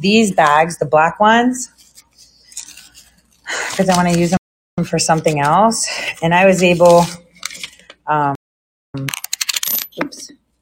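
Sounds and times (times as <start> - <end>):
speech: 0.0 - 1.8, 3.5 - 7.2, 8.1 - 8.4
coins dropping into a bag: 9.1 - 10.2.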